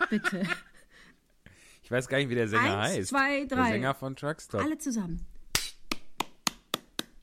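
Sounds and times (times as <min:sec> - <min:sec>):
laughter: 0:00.0 - 0:00.8
speech: 0:00.1 - 0:00.7, 0:01.9 - 0:05.3
sharp crisp hand claps: 0:05.5 - 0:07.2.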